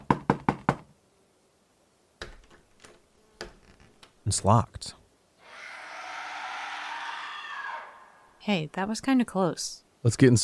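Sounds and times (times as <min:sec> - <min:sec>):
knocking on a door: 0:00.0 - 0:00.9
speech: 0:04.3 - 0:05.0, 0:08.5 - 0:10.4.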